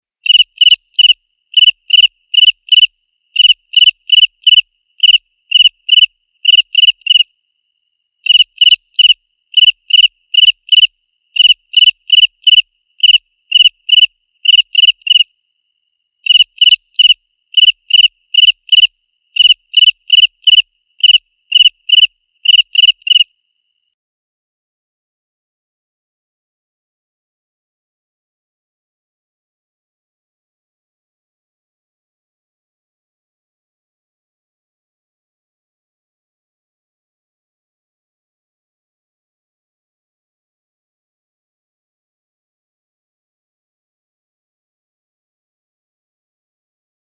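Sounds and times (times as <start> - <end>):
crickets chirping: 0.2 - 24.0.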